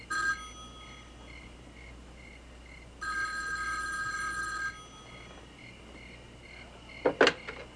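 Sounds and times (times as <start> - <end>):
telephone ringing in rapid bell trills: 0.0 - 1.2, 3.0 - 5.4.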